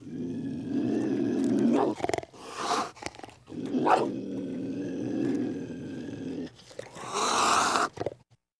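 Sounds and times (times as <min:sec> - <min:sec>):
cougar growling: 0:00.0 - 0:08.2
cougar hissing: 0:01.9 - 0:04.1, 0:06.5 - 0:08.1.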